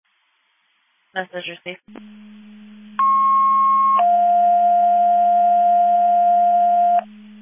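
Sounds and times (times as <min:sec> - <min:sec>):
speech: 0:01.1 - 0:02.4
constant low hum: 0:01.9 - 0:07.4
electronic dispatch alert tones over a radio channel: 0:03.0 - 0:07.1.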